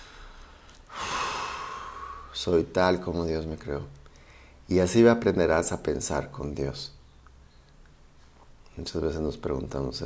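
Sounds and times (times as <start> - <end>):
deep inhale: 0.0 - 2.4, 4.1 - 4.6
speech: 2.4 - 4.0, 4.7 - 7.0, 8.8 - 10.0.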